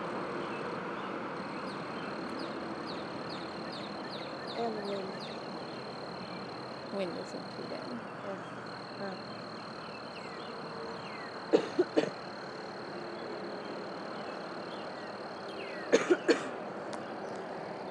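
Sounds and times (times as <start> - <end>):
crickets chirping outdoors: 0.0 - 17.9
traffic noise: 0.0 - 17.9
speech: 4.6 - 5.4, 6.9 - 9.4
person coughing: 11.6 - 12.1, 15.9 - 16.5.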